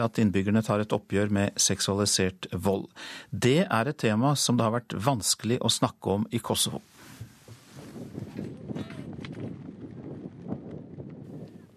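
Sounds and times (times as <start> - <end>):
speech: 0.0 - 7.0
gusty wind buffeting microphone across football stadium: 7.1 - 11.7.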